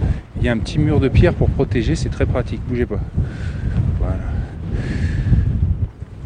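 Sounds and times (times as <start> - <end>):
strong wind buffeting the microphone: 0.0 - 6.2
speech: 0.4 - 5.0.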